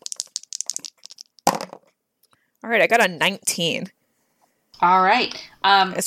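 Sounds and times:
two dice rolled across a hard surface: 0.0s - 1.9s
speech: 2.6s - 4.0s, 4.8s - 6.0s.

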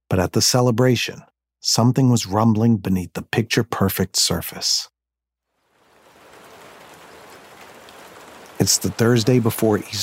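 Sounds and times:
speech: 0.1s - 4.9s, 8.6s - 10.0s
steady afternoon rain in St. Catharines: 5.5s - 10.0s.

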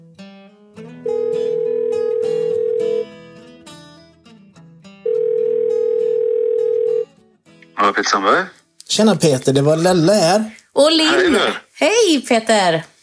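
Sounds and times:
telephone ringback tone while placing a call: 1.1s - 3.1s, 5.1s - 7.0s
speech: 8.0s - 12.9s.

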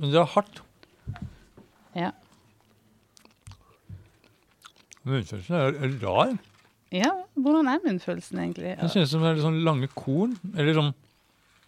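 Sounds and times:
speech: 0.0s - 0.7s, 2.0s - 2.2s, 5.0s - 11.0s
chewing hard crunchy food: 2.2s - 5.1s, 5.9s - 6.9s, 9.8s - 11.6s.

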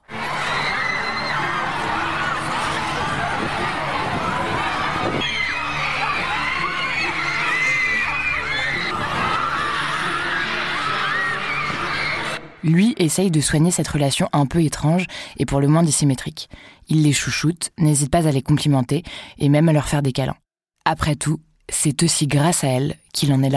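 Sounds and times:
crowd of girl fans of a pop singer screaming: 0.0s - 12.5s
speech: 12.6s - 23.5s.

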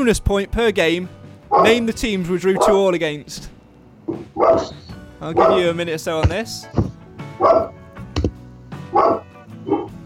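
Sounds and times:
speech: 0.0s - 7.7s
dog barking: 1.5s - 1.8s, 2.6s - 2.8s, 4.3s - 5.7s, 7.4s - 7.8s, 8.9s - 10.0s.

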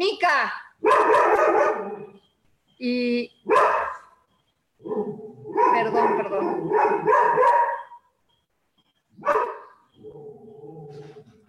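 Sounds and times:
speech: 0.0s - 2.1s, 2.8s - 3.8s, 4.8s - 7.7s
dog barking: 0.8s - 2.3s, 3.4s - 4.2s, 4.8s - 8.1s, 9.2s - 11.4s.

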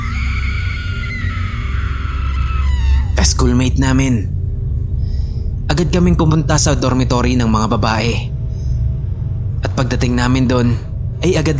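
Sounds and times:
woman screaming: 0.0s - 3.2s
heavy low rumble: 0.0s - 11.5s
speech: 3.2s - 4.4s, 5.7s - 8.3s, 9.8s - 11.5s.

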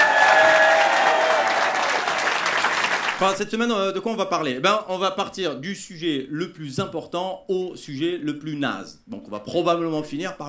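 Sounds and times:
audience applauding at the République: 0.0s - 3.4s
speech: 3.2s - 10.4s.

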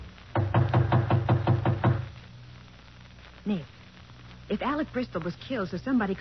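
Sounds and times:
knocking on a partly open apartment door: 0.4s - 2.1s
speech: 3.4s - 3.8s, 4.5s - 6.1s.

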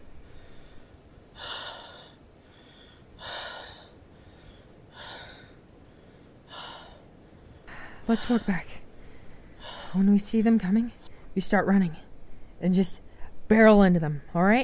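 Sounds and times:
low hiss: 0.0s - 14.6s
heavy breathing of someone catching their breath after running: 0.1s - 10.2s
speech: 8.1s - 8.8s, 9.9s - 12.0s, 12.6s - 14.6s.

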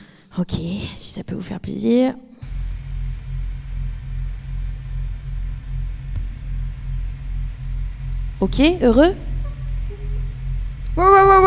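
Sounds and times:
speech: 0.4s - 2.3s, 8.4s - 9.3s, 11.0s - 11.4s
steady low droning hum: 2.4s - 11.4s.

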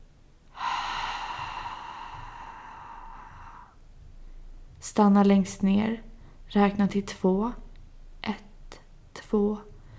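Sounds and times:
slow breath out through the mouth: 0.5s - 4.4s
speech: 4.8s - 7.6s, 8.2s - 8.5s, 9.3s - 9.7s.

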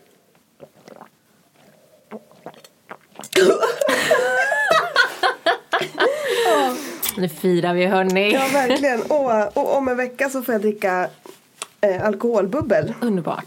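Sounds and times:
person sipping and swallowing a drink: 0.0s - 3.9s
several people laughing and chuckling: 3.7s - 6.7s
speech: 7.2s - 11.2s, 11.8s - 13.4s.

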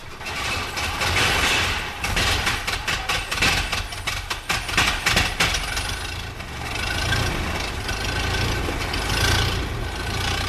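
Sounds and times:
vintage 9.2-litre racing car engine running: 0.0s - 10.4s.

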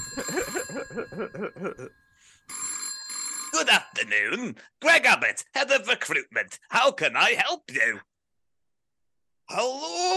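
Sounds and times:
telephone ringing in rapid warbling pulses: 0.0s - 4.3s
speech: 1.0s - 2.4s, 3.6s - 8.1s, 9.5s - 10.1s.

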